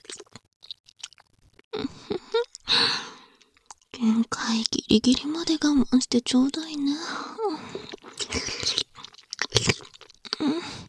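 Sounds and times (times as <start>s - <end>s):
wet mouth sounds of licking and nibbling on an ear: 0.0s - 2.7s, 3.3s - 5.6s, 7.7s - 10.5s
speech: 4.0s - 7.6s.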